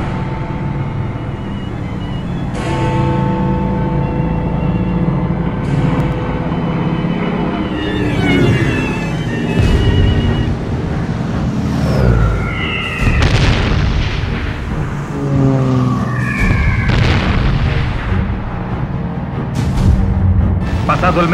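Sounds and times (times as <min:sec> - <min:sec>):
constant roaring rumble: 0:00.0 - 0:21.3
descending whistles of bombs dropped by naval aircraft: 0:01.3 - 0:03.2, 0:06.9 - 0:10.7, 0:11.6 - 0:18.0
bomb explosions on the government house in a city: 0:09.6 - 0:18.9.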